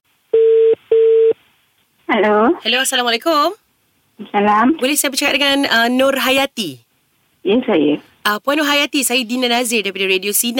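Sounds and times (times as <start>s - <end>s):
telephone line tone of short steady electronic beeps: 0.4s - 1.4s
speech: 2.1s - 3.6s, 4.2s - 6.8s, 7.4s - 10.5s.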